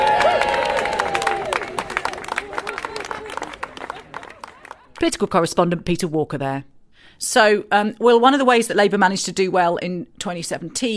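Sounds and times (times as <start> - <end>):
large crowd applauding at a political rally: 0.0 - 5.1
speech: 5.0 - 10.9.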